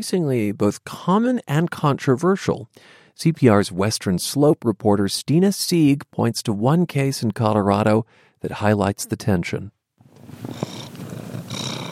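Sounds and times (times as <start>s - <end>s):
speech: 0.0s - 10.8s
cat purring: 10.2s - 11.8s.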